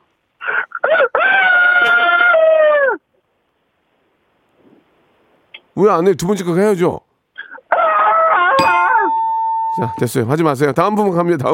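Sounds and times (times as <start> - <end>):
caller over a phone line imitating a rooster crowing: 0.4 - 3.0, 7.5 - 9.2
speech: 5.8 - 7.1, 9.8 - 11.5.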